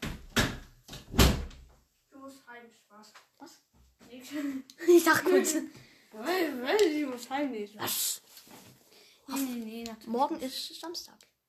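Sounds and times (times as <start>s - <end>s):
door being pushed shut: 0.0s - 1.7s
speech: 2.3s - 8.2s, 9.3s - 11.3s.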